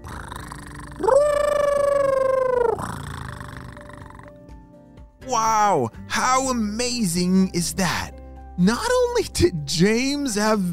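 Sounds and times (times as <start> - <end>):
happy cat-like creature call: 0.0 - 4.3
speech: 5.3 - 10.7.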